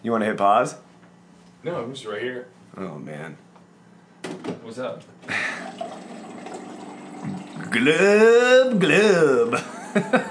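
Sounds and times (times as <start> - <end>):
speech: 0.0 - 0.9, 1.6 - 3.4, 4.2 - 5.4, 7.2 - 10.2
tap water running: 5.3 - 9.5
tap water pouring into a glass: 5.5 - 7.8
laughter: 9.4 - 10.2.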